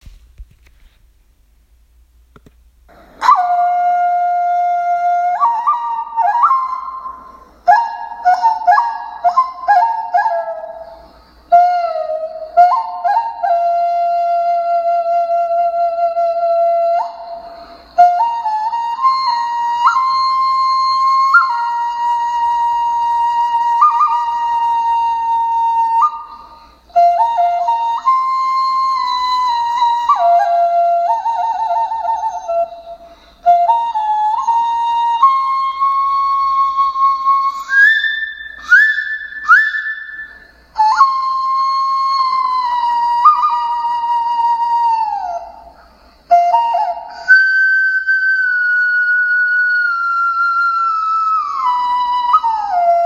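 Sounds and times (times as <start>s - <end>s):
koudi bone flute: 2.9s - 53.0s.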